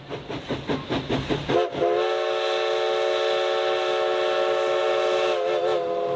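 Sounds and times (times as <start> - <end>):
historic steam locomotive chuffing on a scenic railroad along the Oregon coast: 0.0 - 6.1
historic steam locomotive whistle: 1.5 - 6.1.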